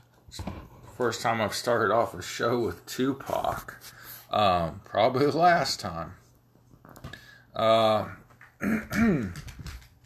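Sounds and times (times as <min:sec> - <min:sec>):
room noise: 0:00.0 - 0:10.0
speech: 0:00.3 - 0:06.2, 0:07.6 - 0:09.5
person clearing throat: 0:08.6 - 0:09.4.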